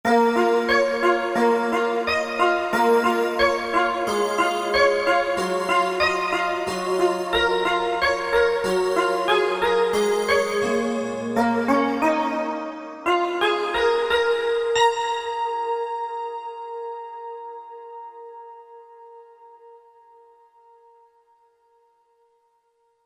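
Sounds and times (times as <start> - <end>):
Korg MSC-1S synthesizer music: 0.1 - 18.0.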